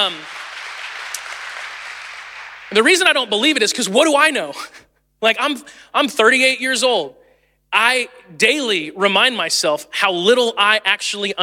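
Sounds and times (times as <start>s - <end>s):
speech: 0.0s - 0.4s, 2.7s - 11.4s
crowd clapping: 0.0s - 3.2s.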